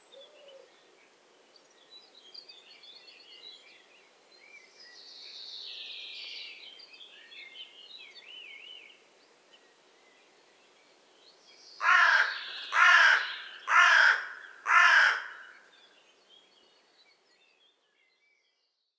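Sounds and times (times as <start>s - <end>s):
carrion crow Corvus corone cawing: 11.8s - 15.6s
other birds chattering and whistling: 11.8s - 15.6s.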